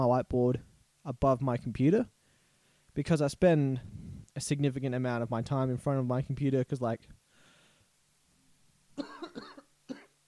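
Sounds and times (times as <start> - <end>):
speech: 0.0 - 2.2, 3.0 - 7.2
husky coughs: 9.0 - 10.1.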